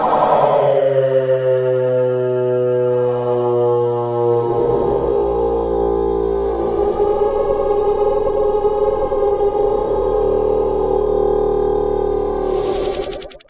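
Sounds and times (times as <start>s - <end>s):
robotic stuttery spooky vocal drone: 0.0s - 13.4s.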